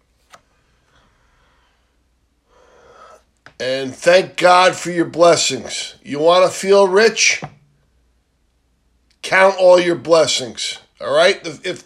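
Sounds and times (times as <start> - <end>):
deep breath drawn during a calming talk: 0.7 - 3.4
speech: 3.6 - 7.5, 9.3 - 11.8.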